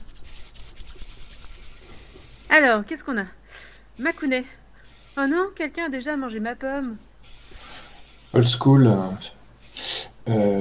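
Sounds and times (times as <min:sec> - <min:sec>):
hand rubbing a crystal ball: 0:00.0 - 0:01.9, 0:06.0 - 0:09.8
speech: 0:02.5 - 0:03.4, 0:04.0 - 0:04.6, 0:05.2 - 0:07.1, 0:08.3 - 0:09.4, 0:10.3 - 0:10.6.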